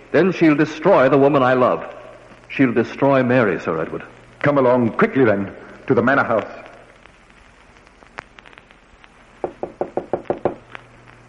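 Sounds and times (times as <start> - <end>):
speech: 0.1 - 6.6
firm knocks on a wooden door at a manor house: 9.4 - 10.6.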